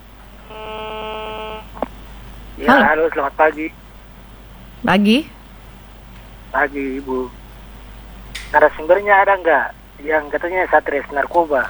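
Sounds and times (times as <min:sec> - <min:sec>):
telephone line tone as a caller is answered on a phone-in line: 0:00.0 - 0:01.8
speech: 0:02.6 - 0:03.8, 0:04.8 - 0:05.4, 0:06.5 - 0:07.4, 0:08.5 - 0:11.6.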